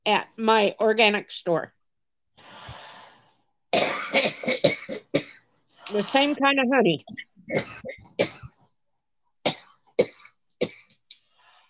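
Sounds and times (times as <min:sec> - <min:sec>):
speech: 0:00.0 - 0:01.8, 0:05.9 - 0:08.0
harsh hacking coughs: 0:03.7 - 0:05.4, 0:07.5 - 0:08.6, 0:09.4 - 0:11.0.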